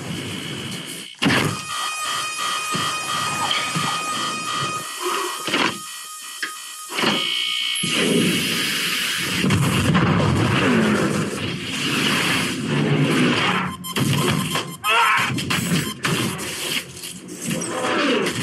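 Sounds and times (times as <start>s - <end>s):
several electronic alarms beeping and droning: 0.0s - 9.4s, 13.4s - 16.5s
loud bursts of harsh mechanical noise: 0.0s - 18.4s.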